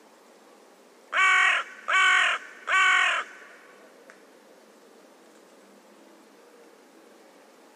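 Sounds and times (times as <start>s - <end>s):
bird cawing: 1.1s - 3.8s.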